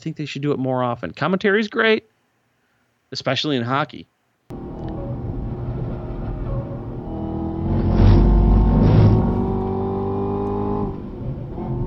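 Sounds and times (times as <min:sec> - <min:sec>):
speech: 0:00.0 - 0:02.1, 0:03.1 - 0:04.7
rushing noise: 0:04.5 - 0:09.9
Camaro ZL1 race car engine revving on track at the Hockenheim Ring: 0:04.5 - 0:11.8.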